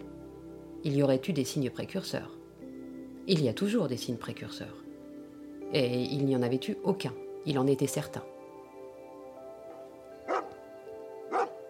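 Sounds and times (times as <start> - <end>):
speech: 0.8 - 2.4, 3.2 - 4.8, 5.7 - 8.3
dog barking: 10.3 - 10.5, 11.3 - 11.6.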